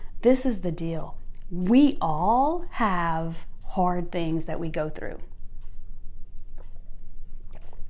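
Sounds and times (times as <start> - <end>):
low steady rumble: 0.0 - 7.8
speech: 0.2 - 5.3
sipping matcha green cacao tea from a cup: 6.5 - 7.8.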